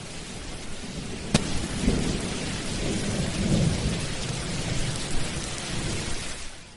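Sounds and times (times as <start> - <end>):
low thunder rumbling and cracking in a storm: 0.0 - 6.6
steady rain in a thunderstorm: 0.0 - 6.7.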